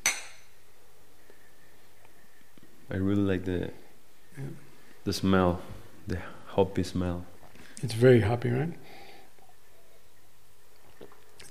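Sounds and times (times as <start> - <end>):
beer glasses clinking in a toast: 0.0 - 0.6
speech: 2.9 - 3.8, 4.4 - 9.0.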